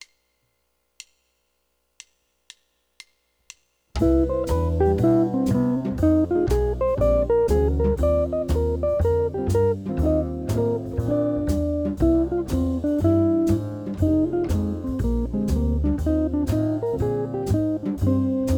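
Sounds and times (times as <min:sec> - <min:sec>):
C major and E-flat major chords: 0:04.0 - 0:18.4.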